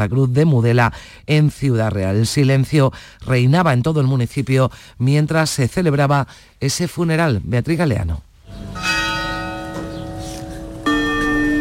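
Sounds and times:
speech: 0:00.0 - 0:08.9
church bells tolling: 0:08.5 - 0:11.6.

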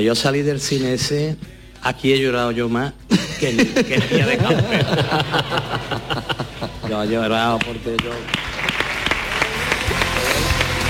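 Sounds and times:
speech: 0:00.0 - 0:08.5
laughter: 0:03.1 - 0:07.6
crowd applauding: 0:04.6 - 0:10.8.

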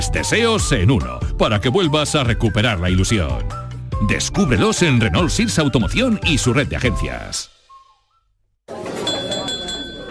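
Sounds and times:
speech: 0:00.0 - 0:07.5
faint whistle-like tone: 0:07.5 - 0:08.4
lively crowd chatter: 0:08.7 - 0:10.1
glasses clinking for a family toast: 0:08.8 - 0:10.1.

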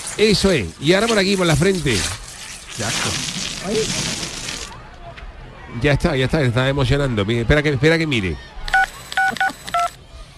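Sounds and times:
speech: 0:00.2 - 0:02.2, 0:02.8 - 0:04.3, 0:05.7 - 0:08.6
mobile phone keypad beeps: 0:08.7 - 0:10.0.

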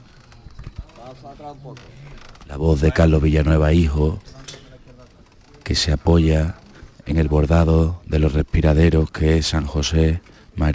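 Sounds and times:
creaking wood and silver of a pallium float in a religious procession: 0:00.0 - 0:08.8
speech: 0:01.0 - 0:04.4, 0:05.7 - 0:10.7.

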